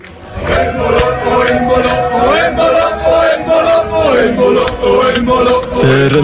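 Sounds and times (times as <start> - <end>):
large crowd of football fans cheering and chanting: 0.0 - 6.2.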